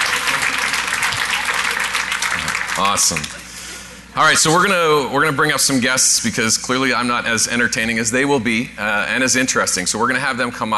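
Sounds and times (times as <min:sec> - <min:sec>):
crowd applauding: 0:00.0 - 0:03.5
speech: 0:02.8 - 0:03.4, 0:04.2 - 0:10.7.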